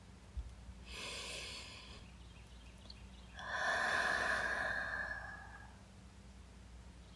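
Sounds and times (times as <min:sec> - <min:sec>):
person inhaling close to someone asleep under a blanket, smelling them: 0:00.9 - 0:02.0, 0:03.4 - 0:05.8.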